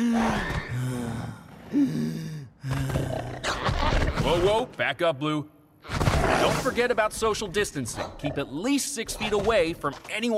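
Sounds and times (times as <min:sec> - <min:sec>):
person imitating labored gasping breaths of a coronavirus symptom: 0:00.0 - 0:03.6
speech: 0:01.7 - 0:03.1, 0:04.3 - 0:05.6, 0:06.2 - 0:10.3.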